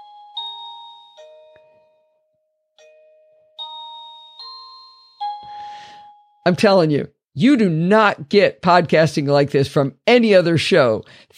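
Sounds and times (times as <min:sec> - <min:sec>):
doorbell chime playing a melodic sequence of bell-like tones: 0:00.0 - 0:06.5
speech: 0:06.4 - 0:11.3.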